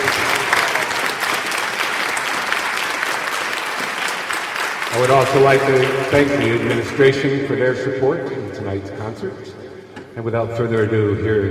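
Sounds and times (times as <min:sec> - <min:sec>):
crowd applauding in a large room: 0:00.0 - 0:07.3
speech: 0:04.9 - 0:09.6, 0:10.2 - 0:11.4.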